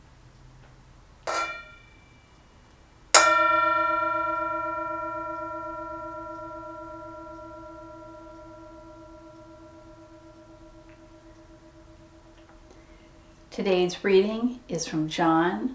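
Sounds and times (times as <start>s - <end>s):
Tibetan singing bowl struck and ringing: 1.3s - 2.2s, 3.2s - 14.4s
speech: 13.6s - 15.7s.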